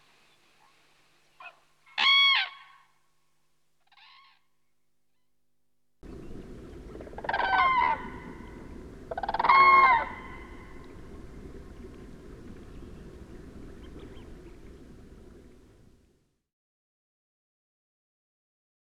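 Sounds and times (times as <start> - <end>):
background noise: 0.0 - 16.4
Common crane trumpeting calls: 1.4 - 2.9, 6.9 - 11.2.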